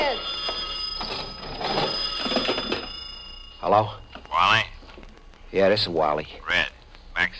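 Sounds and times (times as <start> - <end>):
old-fashioned telephone bell ringing: 0.0 - 4.2
speech: 3.7 - 4.7, 5.5 - 7.3.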